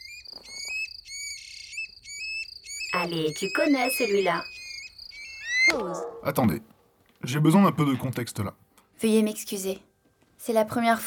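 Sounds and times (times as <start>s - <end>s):
song thrush singing: 0.0s - 6.3s
speech: 3.0s - 4.6s, 5.7s - 11.0s.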